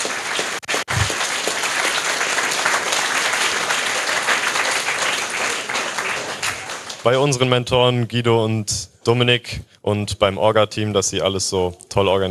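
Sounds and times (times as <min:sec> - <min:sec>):
crowd applauding: 0:00.0 - 0:07.4
speech: 0:07.0 - 0:12.2.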